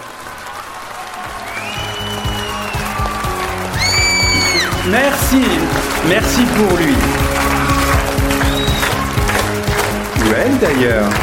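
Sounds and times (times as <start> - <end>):
audience applauding to encourage a participant: 0.0 - 11.2
sharp whistles from audience: 1.4 - 3.0, 3.8 - 5.2, 8.4 - 9.0
speech: 4.9 - 7.5, 10.2 - 11.2.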